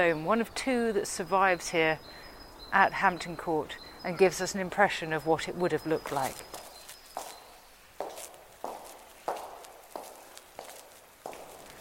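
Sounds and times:
speech: 0:00.0 - 0:06.6
footsteps walking down an empty palace corridor: 0:06.0 - 0:11.7.

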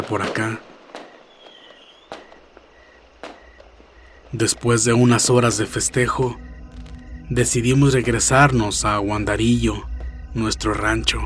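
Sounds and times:
speech: 0:00.0 - 0:00.7, 0:04.3 - 0:06.5, 0:07.3 - 0:11.2
fireworks and gunshots fired into the air in New Year celebration at a shop: 0:00.0 - 0:04.3
fainter pops and crackles of fireworks: 0:00.0 - 0:04.4.

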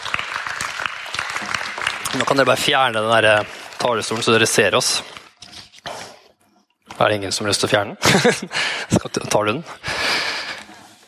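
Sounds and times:
audience applause: 0:00.0 - 0:04.2
speech: 0:02.1 - 0:05.2, 0:07.0 - 0:09.9.

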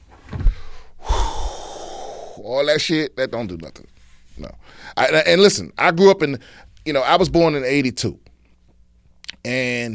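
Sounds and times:
person imitating a martial arts breathing exercise: 0:00.4 - 0:02.4
speech: 0:02.4 - 0:08.3, 0:09.4 - 0:09.9.

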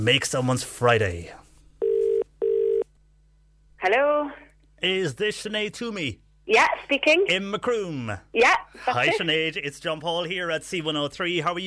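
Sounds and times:
speech: 0:00.0 - 0:01.4, 0:03.8 - 0:11.6
telephone ringback tone of an outgoing phone call: 0:01.8 - 0:02.8.

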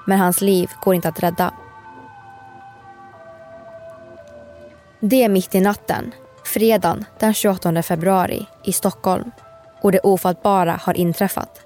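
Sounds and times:
speech: 0:00.0 - 0:01.6, 0:05.0 - 0:11.6
ambulance siren wailing at a Stockholm crossing on a cold night: 0:00.0 - 0:06.5
constant hiss: 0:00.3 - 0:11.6.

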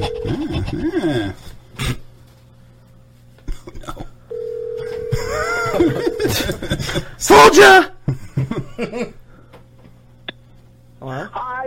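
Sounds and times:
telephone ringing tone on an outgoing call to a mobile phone: 0:00.0 - 0:00.5, 0:04.3 - 0:06.4
laughter: 0:00.0 - 0:01.5, 0:05.1 - 0:07.2, 0:08.1 - 0:09.2
speech: 0:00.4 - 0:02.0, 0:05.8 - 0:07.9.

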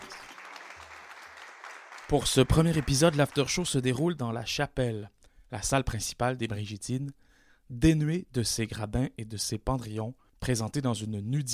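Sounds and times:
crowd applauding after a performance: 0:00.0 - 0:03.8
speech: 0:02.1 - 0:11.5.

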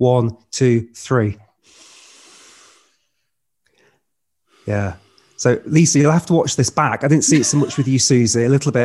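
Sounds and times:
speech: 0:00.0 - 0:01.8, 0:04.7 - 0:08.8
faint breath: 0:01.6 - 0:05.6
two people taking a deep breath: 0:01.6 - 0:05.7
laughter: 0:07.0 - 0:08.7.

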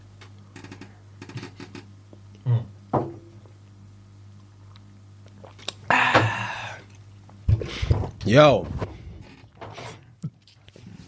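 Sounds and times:
low steady hum: 0:00.0 - 0:11.0
person sipping a drink: 0:04.4 - 0:07.0
speech: 0:08.3 - 0:08.8.

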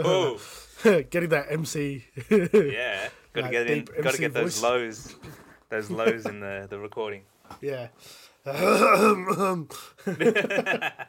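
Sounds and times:
speech: 0:00.0 - 0:11.0
person clearing throat: 0:08.5 - 0:09.6
laughter: 0:10.0 - 0:11.0.

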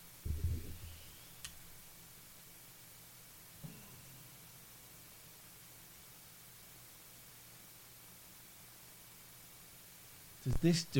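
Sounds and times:
faint steady hiss in the recording: 0:00.0 - 0:10.9
soft low thump: 0:00.2 - 0:00.9
speech: 0:10.4 - 0:10.9.

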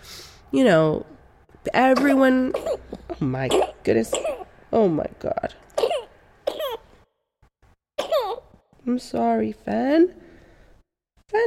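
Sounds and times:
speech: 0:00.5 - 0:05.6, 0:08.9 - 0:10.2
person coughing harshly: 0:02.0 - 0:04.5, 0:05.8 - 0:06.8, 0:08.0 - 0:08.4.

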